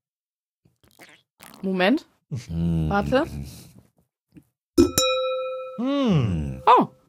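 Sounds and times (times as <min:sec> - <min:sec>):
speech: 0:00.9 - 0:03.7, 0:05.8 - 0:07.0
sparkling water bottle clinking against a wine glass: 0:04.8 - 0:05.8.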